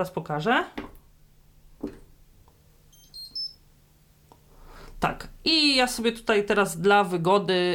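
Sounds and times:
speech: 0.0s - 0.8s, 5.0s - 7.7s
faint hum: 0.0s - 7.7s
washing machine power-on chime of rising beeps: 2.9s - 3.6s.

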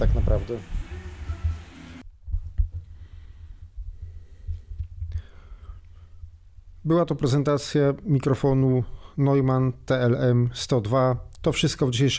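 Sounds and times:
speech: 0.0s - 0.8s, 6.8s - 12.1s
electric fan blowing directly into microphone: 0.0s - 2.9s.

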